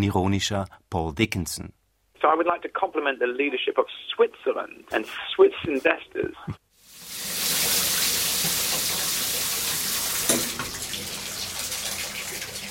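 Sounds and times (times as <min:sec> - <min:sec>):
speech: 0:00.0 - 0:06.6
shower water running: 0:06.8 - 0:12.6.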